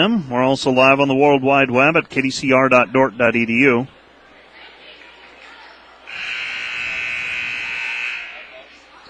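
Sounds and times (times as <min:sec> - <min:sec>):
speech: 0:00.0 - 0:04.0
faint arena noise: 0:00.0 - 0:09.0
basketball game buzzer blaring: 0:06.1 - 0:08.5.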